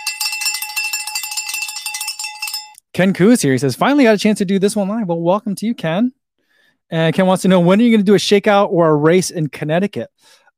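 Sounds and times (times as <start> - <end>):
handbell shaken rapidly: 0.0 - 2.8
speech: 3.0 - 6.2, 6.9 - 10.4.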